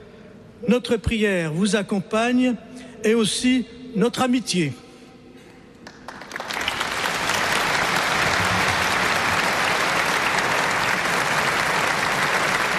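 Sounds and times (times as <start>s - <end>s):
speech: 0.6s - 4.8s
crowd applauding at a prayer service: 5.8s - 12.7s.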